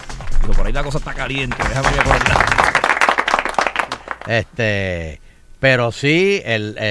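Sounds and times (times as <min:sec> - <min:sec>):
speech: 0:00.5 - 0:02.7, 0:04.3 - 0:06.9
applause from a small group: 0:01.2 - 0:04.5.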